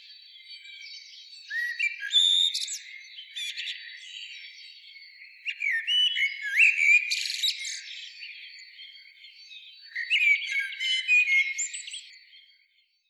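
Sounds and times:
common blackbird Turdus merula singing warbling phrases: 0.0s - 12.5s.

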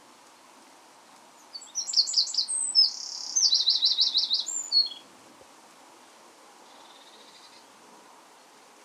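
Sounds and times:
Eurasian wren Troglodytes troglodytes song with rattling trill: 1.4s - 5.0s.

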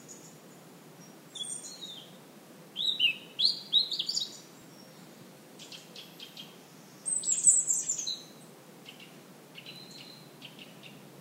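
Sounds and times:
European robin Erithacus rubecula singing: 0.0s - 2.2s, 2.8s - 11.1s.

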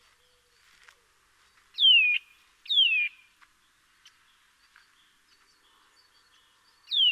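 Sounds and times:
Eurasian nuthatch Sitta europaea downslurred whistles: 1.8s - 3.2s.

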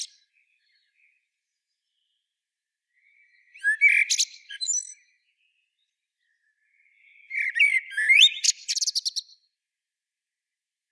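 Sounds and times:
common blackbird Turdus merula singing: 0.0s - 1.2s, 3.0s - 5.6s, 6.2s - 9.3s.

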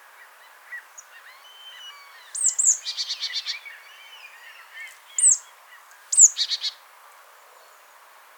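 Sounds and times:
marsh tit Poecile palustris giving slurred and buzzy rasping calls: 1.2s - 5.4s.

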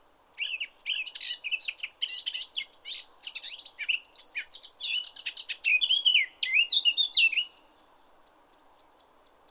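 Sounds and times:
Eurasian blackcap Sylvia atricapilla singing: 0.4s - 7.6s.

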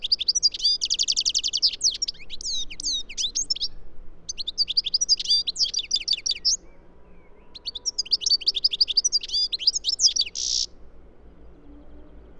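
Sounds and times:
European goldfinch Carduelis carduelis song: 0.0s - 10.8s.

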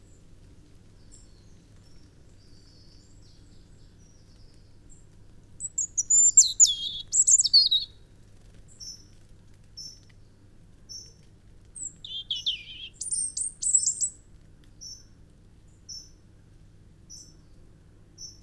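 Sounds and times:
European robin Erithacus rubecula singing: 5.6s - 8.0s, 11.8s - 14.2s.

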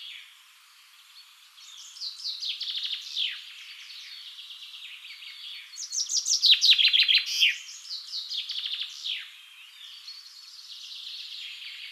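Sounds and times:
common chaffinch songs: 0.0s - 11.8s.

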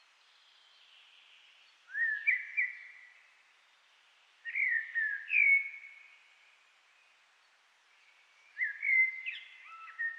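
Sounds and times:
common blackbird Turdus merula whistling song: 1.9s - 3.0s, 4.4s - 6.0s, 8.5s - 10.1s.

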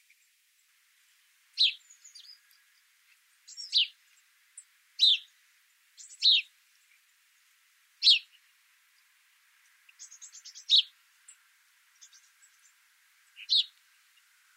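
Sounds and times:
house sparrow Passer domesticus chirping: 1.6s - 2.6s, 3.5s - 4.0s, 4.6s - 5.3s, 6.0s - 6.5s, 8.0s - 8.4s, 9.9s - 11.4s, 12.0s - 13.8s.

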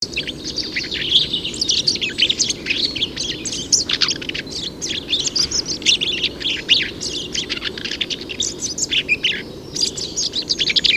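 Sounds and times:
Eurasian blackcap Sylvia atricapilla singing: 0.0s - 10.9s.

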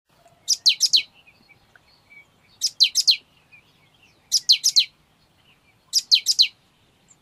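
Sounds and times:
great tit Parus major calls: 0.4s - 7.2s.

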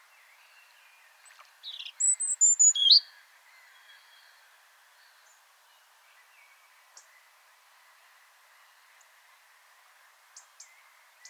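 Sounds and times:
faint background hiss: 0.0s - 11.2s
European robin whistling: 1.7s - 3.0s.

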